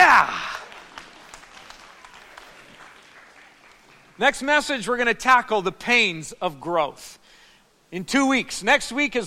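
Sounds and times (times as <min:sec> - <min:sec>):
large audience standing and applauding: 0:00.0 - 0:04.6
speech: 0:04.2 - 0:07.3, 0:07.9 - 0:09.2.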